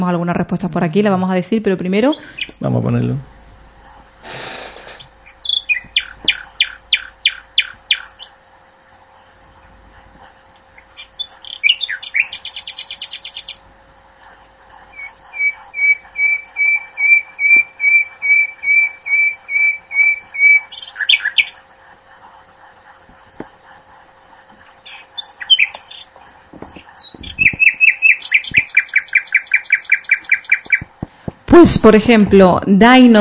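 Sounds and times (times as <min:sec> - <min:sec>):
speech: 0:00.0 - 0:03.3, 0:31.6 - 0:33.1
nightingale song: 0:02.0 - 0:08.4, 0:10.5 - 0:13.7, 0:14.8 - 0:21.7, 0:24.3 - 0:32.2.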